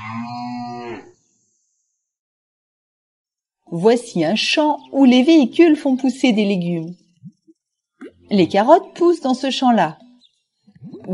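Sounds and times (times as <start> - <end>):
cow mooing on a farm: 0.0 - 1.2
speech: 3.7 - 7.0, 8.3 - 10.0.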